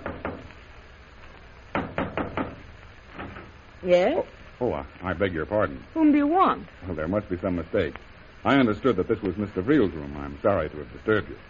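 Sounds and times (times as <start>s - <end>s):
knocking on a hotel room door: 0.0s - 0.5s, 1.7s - 3.5s
speech: 3.8s - 11.4s.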